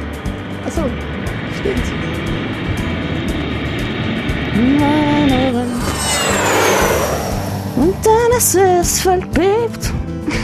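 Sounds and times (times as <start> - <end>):
airplane engine roar while landing: 0.0 - 9.9
speech: 0.7 - 2.3, 4.6 - 5.0, 8.0 - 10.4
brief rising whine of landing airplane: 2.0 - 9.0.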